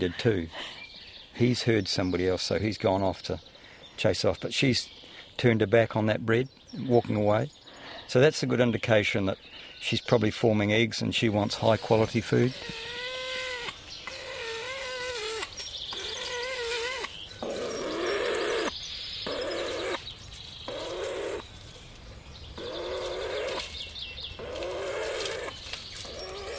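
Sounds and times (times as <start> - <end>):
speech: 0.0 - 0.8, 1.4 - 13.0
male weka calling in Marlborough: 11.8 - 20.0, 20.7 - 21.5, 22.6 - 23.7, 24.4 - 26.5.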